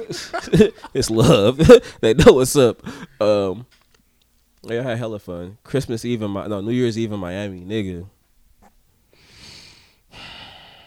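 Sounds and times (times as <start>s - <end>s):
laughter: 0.0s - 3.2s
speech: 0.0s - 3.8s, 4.6s - 8.2s
man taking a deep breath: 9.1s - 10.8s.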